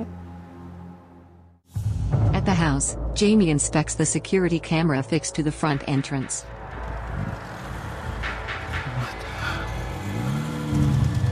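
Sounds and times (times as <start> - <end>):
speech: 2.6 - 6.6
car engine rumbling as it pulls up: 4.0 - 11.2.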